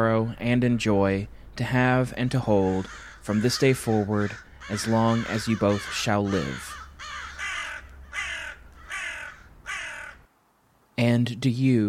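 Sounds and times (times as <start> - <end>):
speech: 0.0 - 6.8, 11.0 - 11.8
crow cawing: 2.6 - 10.3.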